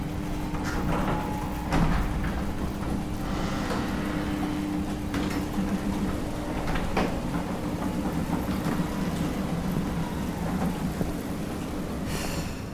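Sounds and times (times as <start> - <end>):
heavy garage bay door straining and groaning open: 0.4 - 12.7.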